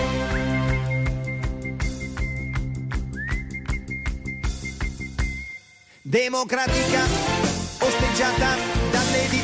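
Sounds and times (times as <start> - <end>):
band playing a steady punchy beat with bass and drums: 0.0 - 5.6, 6.5 - 9.4
person whistling a one-note song: 0.0 - 6.0
speech: 6.1 - 9.4.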